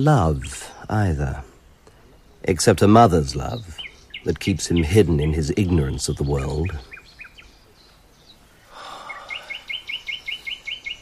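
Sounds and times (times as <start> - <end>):
speech: 0.0 - 1.5, 2.4 - 7.0
nightingale singing: 0.0 - 11.0
soft breathy sigh: 8.7 - 9.8.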